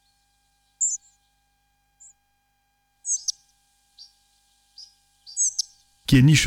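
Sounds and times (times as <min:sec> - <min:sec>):
pied flycatcher calls: 0:00.0 - 0:01.4, 0:03.0 - 0:06.0
speech: 0:06.1 - 0:06.4.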